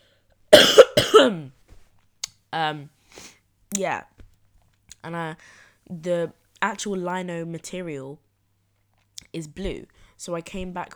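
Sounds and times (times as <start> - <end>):
person coughing: 0.5 - 1.5
throat-clearing hum: 0.6 - 1.4
speech: 2.5 - 4.1, 5.0 - 8.2, 9.3 - 10.9.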